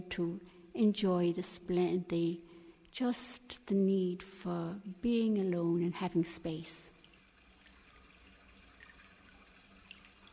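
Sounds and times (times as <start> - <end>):
speech: 0.0 - 6.9
trickle of flowing water: 6.2 - 10.3
water drips and splashes: 6.9 - 10.3.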